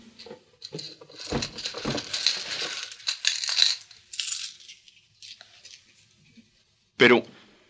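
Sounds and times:
gold coins clinking as a handful is scooped from a chest: 0.6s - 5.4s
speech: 7.0s - 7.4s.

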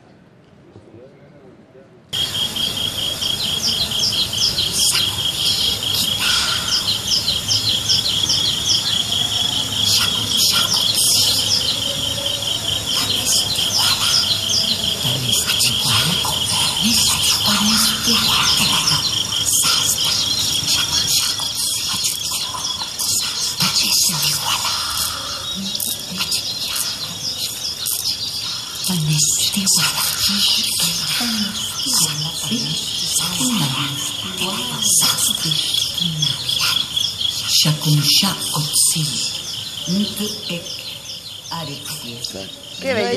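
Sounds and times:
small birds chirping at dawn: 2.2s - 43.1s
steady insect-like buzz: 2.2s - 43.1s
speech: 40.2s - 40.7s, 42.3s - 43.1s.

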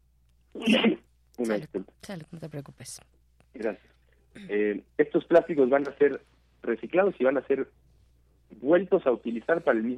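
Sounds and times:
person sneezing: 0.6s - 1.0s
speech: 0.6s - 7.8s, 8.5s - 9.9s.

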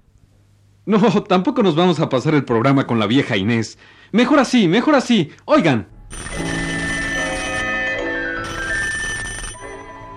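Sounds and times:
speech: 0.8s - 6.5s
telephone bell ringing: 6.1s - 10.1s.

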